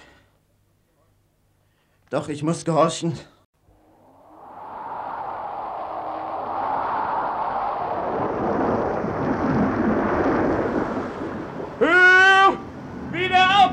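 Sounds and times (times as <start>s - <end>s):
speech: 2.1s - 3.3s
thunderstorm with wind rumbling: 3.7s - 13.2s.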